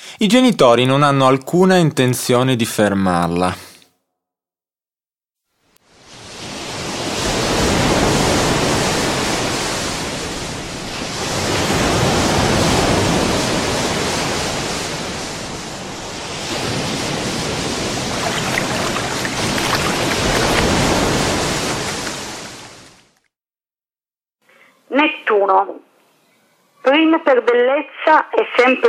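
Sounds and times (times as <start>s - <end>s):
speech: 0.2s - 3.7s, 27.1s - 28.8s
sea waves washing onto a beach in hissing surges: 6.0s - 23.1s.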